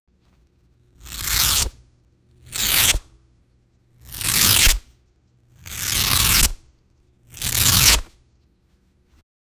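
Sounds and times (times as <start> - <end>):
violent paper rip: 1.0 - 1.8, 2.4 - 3.1, 4.0 - 4.9, 5.6 - 8.2.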